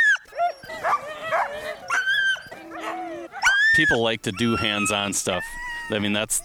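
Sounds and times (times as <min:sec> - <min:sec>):
pack of sled dogs barking and yipping excitedly: 0:00.0 - 0:06.4
speech: 0:03.8 - 0:06.4.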